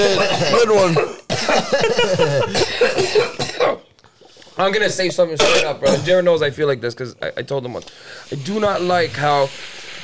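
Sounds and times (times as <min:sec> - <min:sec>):
speech: 0:00.0 - 0:03.8, 0:04.6 - 0:10.0
man coughing: 0:00.0 - 0:03.9, 0:05.4 - 0:06.2.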